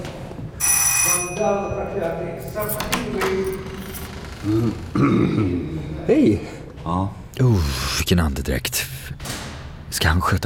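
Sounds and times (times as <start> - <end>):
doorbell ringing at a building: 0.6 - 2.0
speech: 1.4 - 3.8, 4.4 - 9.3, 9.9 - 10.4.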